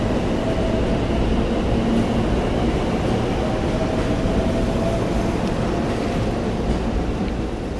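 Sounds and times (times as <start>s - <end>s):
JR Central 313 series electric train running along the rails: 0.0s - 7.7s.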